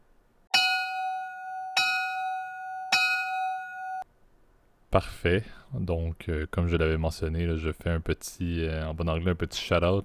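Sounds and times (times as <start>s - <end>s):
bright bell ringing as a segment jingle: 0.5s - 4.0s
speech: 4.9s - 10.0s.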